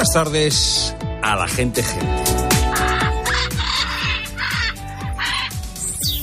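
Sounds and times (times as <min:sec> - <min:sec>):
speech: 0:00.1 - 0:02.5
macaws screeching: 0:02.6 - 0:06.1.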